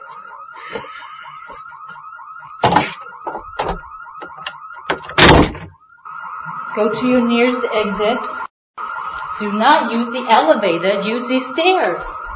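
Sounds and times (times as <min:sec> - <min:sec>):
fire alarm wailing with a fast electronic warble: 0:00.0 - 0:12.3
loud bangs and thuds: 0:02.6 - 0:05.8
speech: 0:06.8 - 0:08.4, 0:09.4 - 0:12.2.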